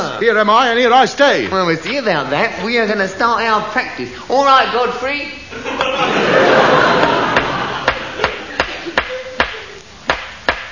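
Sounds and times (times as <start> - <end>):
speech: 0.0 - 6.2
hiss: 0.0 - 10.6
laughter: 5.5 - 9.9
hammer driving wooden stumps into the ground of a potato patch: 10.1 - 10.6.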